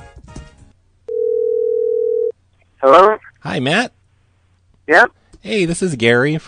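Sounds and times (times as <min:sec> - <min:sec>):
telephone dial tone: 0:01.1 - 0:02.3
speech: 0:02.8 - 0:04.0, 0:04.9 - 0:06.4.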